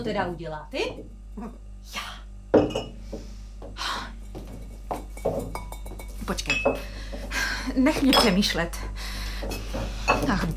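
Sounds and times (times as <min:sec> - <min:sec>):
speech: 0:00.0 - 0:04.0, 0:06.3 - 0:07.0, 0:07.7 - 0:10.5
glass bottles clinking while being tidied: 0:02.5 - 0:03.0, 0:04.3 - 0:07.3, 0:07.9 - 0:08.5, 0:09.5 - 0:10.5.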